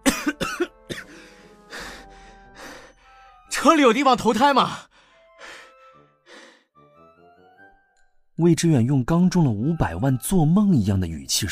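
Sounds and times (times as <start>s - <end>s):
man coughing: 0.0s - 1.1s
man breathing heavily after a run: 1.0s - 3.5s, 4.8s - 6.7s
speech: 3.6s - 4.8s, 8.4s - 11.5s.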